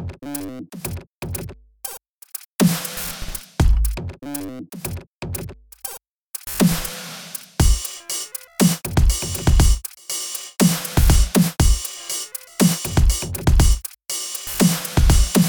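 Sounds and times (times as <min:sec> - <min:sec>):
dubstep music: 0:02.6 - 0:03.6, 0:06.6 - 0:15.4.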